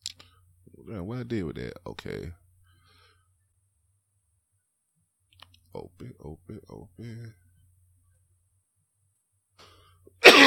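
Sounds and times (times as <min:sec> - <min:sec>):
faint low hum: 0:00.0 - 0:10.2
speech: 0:00.9 - 0:02.4, 0:05.8 - 0:07.4
single loud harsh cough: 0:10.2 - 0:10.4.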